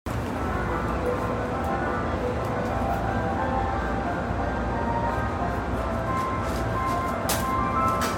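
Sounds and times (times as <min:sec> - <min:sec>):
Keihin-Tohoku Line train north of Ishikawacho: 0:00.1 - 0:08.1.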